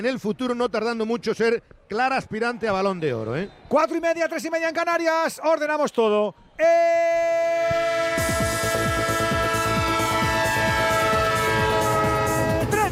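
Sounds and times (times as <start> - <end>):
speech: 0.0 - 8.8
train horn chord: 7.7 - 12.8.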